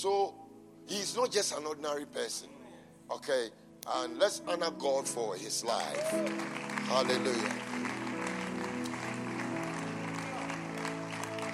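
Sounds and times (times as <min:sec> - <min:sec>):
speech: 0:00.0 - 0:07.9
thin scattered clapping from a gathered crowd: 0:06.1 - 0:11.5.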